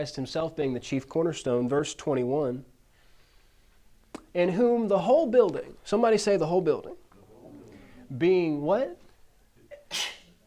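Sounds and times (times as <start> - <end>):
speech: 0.0 - 2.7, 4.4 - 7.0, 8.1 - 9.0, 9.9 - 10.2
intake of breath: 2.9 - 3.8
sneeze during a Bible reading: 9.7 - 10.4.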